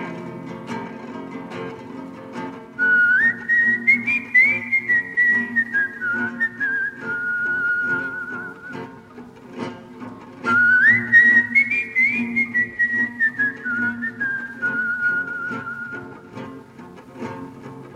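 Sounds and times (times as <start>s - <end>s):
whistled melody of a slow solemn French Resistance song: 2.8s - 9.0s, 10.4s - 16.2s.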